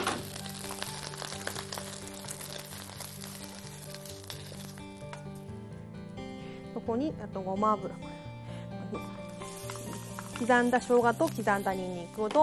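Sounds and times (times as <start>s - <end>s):
gluten meat coated with potato starch sizzling in a hot pan: 0.0s - 5.4s, 9.1s - 12.4s
speech: 6.9s - 8.2s, 8.9s - 9.2s, 10.4s - 12.4s.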